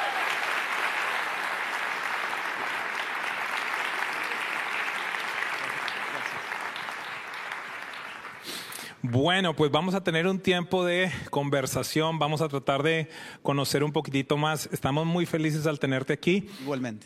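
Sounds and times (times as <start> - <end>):
large audience applause: 0.0 - 8.8
speech: 9.0 - 17.0.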